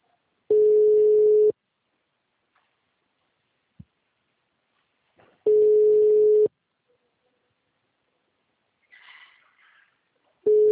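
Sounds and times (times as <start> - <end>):
telephone ringback tone while a call is being placed: 0.5 - 1.5, 5.5 - 6.5, 10.5 - 10.6.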